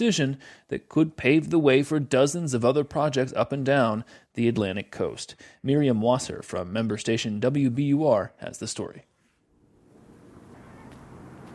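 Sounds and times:
speech: 0.0s - 9.1s
wind gusting across an open concrete harbor terminal: 9.7s - 11.5s.

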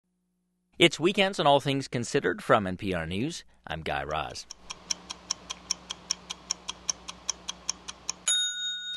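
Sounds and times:
speech: 0.8s - 4.6s
clock ticking: 4.4s - 8.3s
bright bell ringing: 8.2s - 8.9s.

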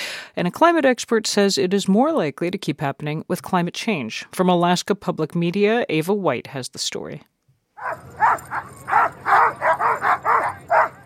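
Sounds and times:
speech: 0.4s - 10.1s
hundreds of sled dogs barking at a race start in Fairbanks Alaska: 7.8s - 11.0s.

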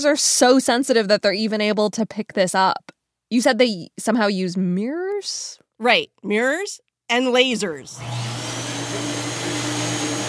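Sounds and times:
speech: 0.0s - 8.4s
shoe scrubbing machine whirring at a gravitational wave observatory: 7.9s - 10.2s.

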